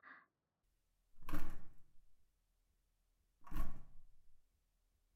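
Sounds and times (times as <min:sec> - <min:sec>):
bathroom door opening with heavy sliding thuds: 0:01.2 - 0:01.8, 0:03.4 - 0:04.1.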